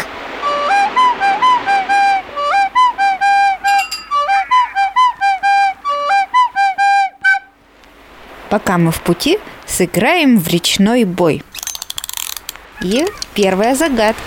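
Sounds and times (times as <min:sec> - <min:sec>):
boatswain's whistle piping a call summoning all hands on deck: 0:00.4 - 0:07.6
speech: 0:08.5 - 0:11.5, 0:12.8 - 0:14.2.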